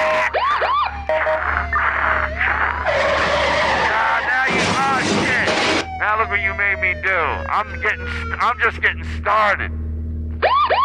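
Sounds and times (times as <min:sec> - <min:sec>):
engine and road noise roar: 0:00.0 - 0:10.8
car tires screeching through repeated skids: 0:01.2 - 0:06.0
speech: 0:06.4 - 0:09.8.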